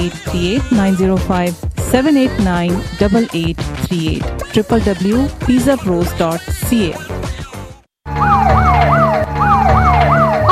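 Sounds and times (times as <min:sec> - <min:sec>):
speech: 0:00.0 - 0:07.1
police siren whooping: 0:08.1 - 0:10.4.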